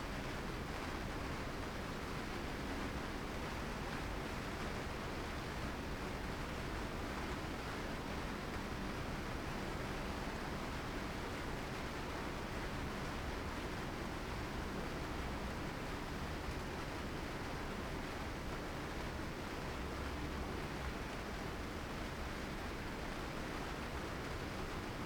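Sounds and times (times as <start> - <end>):
rain heard indoors: 0.0 - 25.0.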